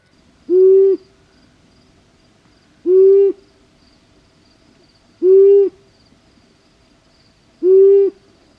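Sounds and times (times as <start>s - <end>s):
long-eared owl low steady hoots: 0.5s - 1.2s, 2.8s - 3.5s, 5.2s - 5.8s, 7.6s - 8.3s.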